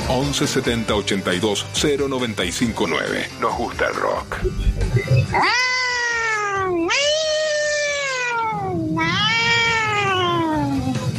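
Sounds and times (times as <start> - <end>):
speech: 0.1 - 5.7
cat meowing: 5.3 - 11.0.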